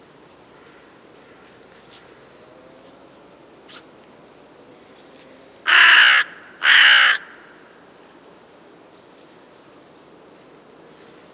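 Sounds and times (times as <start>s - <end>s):
crow cawing: 5.7s - 7.7s.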